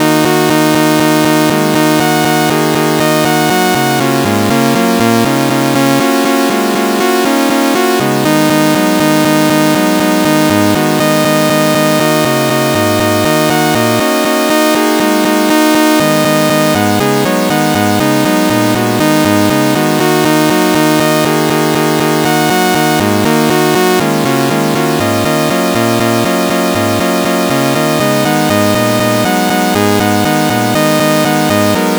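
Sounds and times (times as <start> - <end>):
sawtooth synth playing a minor pentatonic scale: 0.0 - 31.9.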